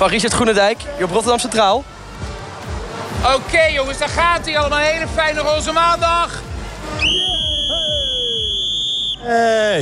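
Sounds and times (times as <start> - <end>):
speech: 0.0 - 2.0, 3.2 - 7.2, 9.2 - 9.7
shrill whistle blast on a train station platform at Rotterdam Centraal: 7.0 - 9.3.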